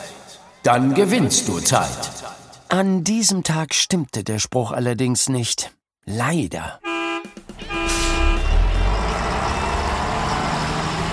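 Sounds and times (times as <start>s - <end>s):
speech: 0.7s - 6.9s
brief horn-like tone from a bus: 6.8s - 9.9s
large overcrowded bus engine starting and pulling away from the stop: 7.4s - 11.1s.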